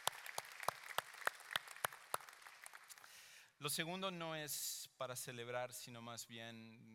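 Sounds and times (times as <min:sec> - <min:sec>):
audience applauding in a steady rhythmic beat: 0:00.0 - 0:03.1
speech: 0:03.6 - 0:06.9.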